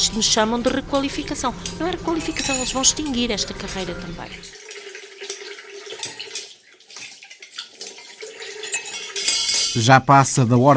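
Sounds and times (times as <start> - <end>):
speech: 0.0 - 4.6, 9.8 - 10.7
steady running water while washing dishes: 1.5 - 9.8
cutlery and dishes clinking as they are washed and put away: 1.6 - 3.2, 4.7 - 9.8.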